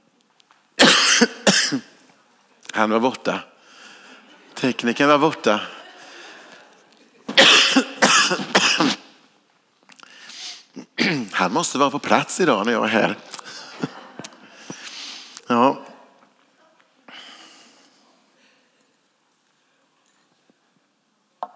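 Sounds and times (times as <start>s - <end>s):
harsh coughs: 0.8s - 2.0s, 7.3s - 9.2s, 10.3s - 11.5s, 13.1s - 16.0s
throat clearing: 0.8s - 2.0s, 7.3s - 9.1s, 10.6s - 11.4s, 13.3s - 16.0s
speech: 1.2s - 2.0s, 2.8s - 3.5s, 4.6s - 5.8s, 11.4s - 13.3s
laughter: 2.8s - 8.5s, 11.4s - 15.9s.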